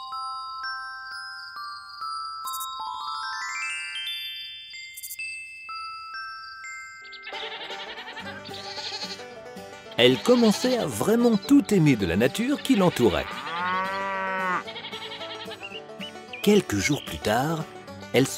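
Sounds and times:
bright tinkling chime-like tones: 0.0s - 8.2s
speech: 7.2s - 7.8s, 10.0s - 13.4s, 16.4s - 18.3s
goat bleating: 7.3s - 11.4s, 12.5s - 15.7s.

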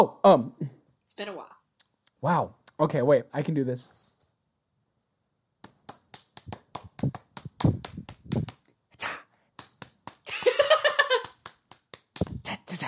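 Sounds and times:
speech: 0.0s - 1.6s, 2.2s - 4.0s, 7.0s - 7.9s
hands slapping bare calves in a rhythmic beat: 5.6s - 8.7s, 9.6s - 12.5s.

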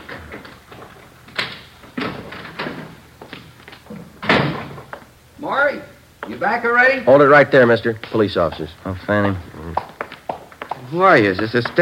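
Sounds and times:
wooden kitchen door opening and closing: 0.0s - 5.0s
kitchen door thud: 3.9s - 4.9s
speech: 5.4s - 9.5s, 10.9s - 11.8s.

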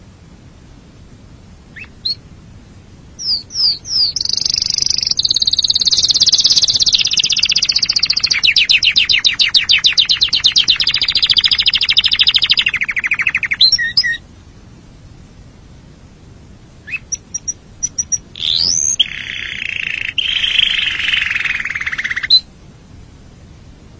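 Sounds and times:
canary singing: 1.7s - 2.2s, 3.2s - 14.2s, 16.8s - 22.5s.

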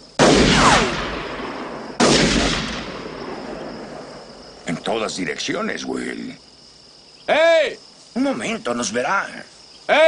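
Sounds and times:
gunshots with echo on open rural land: 0.2s - 4.1s
speech: 4.9s - 6.5s, 7.3s - 10.0s.

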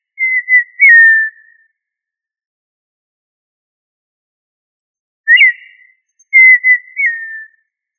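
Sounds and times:
quail whistled calls: 0.2s - 1.6s, 5.3s - 7.6s.

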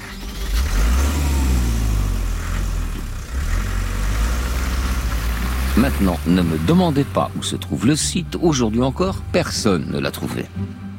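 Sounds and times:
car driving off with a low engine rumble: 0.0s - 10.9s
speech: 5.8s - 10.8s.

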